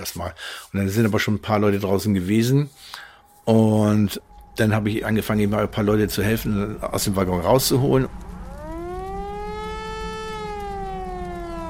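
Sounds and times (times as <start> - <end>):
speech: 0.0 - 8.3
civil defense siren wailing to summon volunteer fire brigade members: 2.2 - 11.6
low rumble: 3.2 - 11.6.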